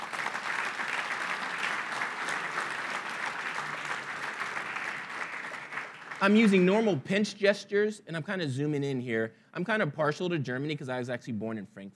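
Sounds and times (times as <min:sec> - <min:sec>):
audience applause at a software demonstration: 0:00.0 - 0:06.9
speech: 0:06.2 - 0:11.9.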